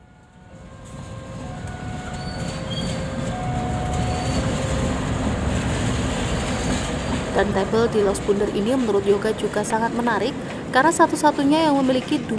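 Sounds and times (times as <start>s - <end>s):
locomotive rolling along railway tracks: 0.0s - 12.3s
high metallic squeals from locomotive wheels: 2.0s - 5.1s
speech: 7.4s - 12.3s.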